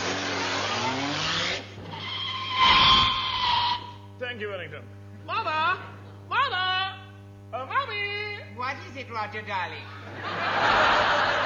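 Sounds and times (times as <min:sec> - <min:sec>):
car driving off: 0:00.0 - 0:01.7
tyres squealing: 0:00.1 - 0:04.1
speech: 0:04.3 - 0:06.0, 0:07.6 - 0:11.4
laughter: 0:09.9 - 0:11.4.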